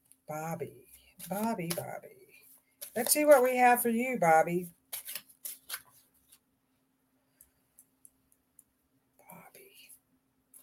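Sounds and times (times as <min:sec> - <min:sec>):
speech: 0:00.3 - 0:02.2, 0:02.9 - 0:04.8
deck of cards being shuffled: 0:00.9 - 0:01.9, 0:02.8 - 0:04.0, 0:04.9 - 0:06.4.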